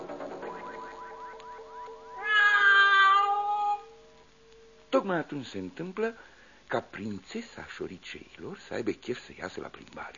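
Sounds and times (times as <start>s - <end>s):
cat meowing: 2.1s - 4.0s
speech: 4.9s - 10.1s.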